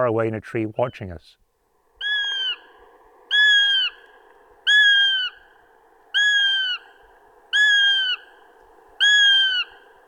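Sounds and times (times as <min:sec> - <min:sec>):
speech: 0:00.0 - 0:01.4
young goshawk wailing begging calls: 0:02.0 - 0:02.7, 0:03.3 - 0:05.5, 0:06.1 - 0:06.9, 0:07.5 - 0:08.3, 0:09.0 - 0:09.8.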